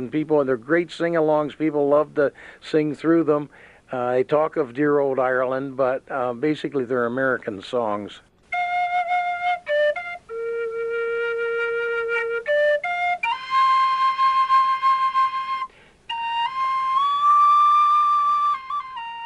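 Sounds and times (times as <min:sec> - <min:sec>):
speech: 0:00.0 - 0:08.3
penny whistle playing a lilting melody unaccompanied: 0:08.5 - 0:19.2.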